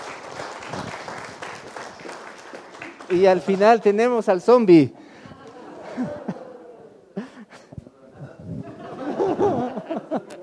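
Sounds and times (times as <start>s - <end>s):
audience applause after a presentation: 0.0s - 4.2s
speech: 3.1s - 5.0s
laughter: 5.0s - 10.4s.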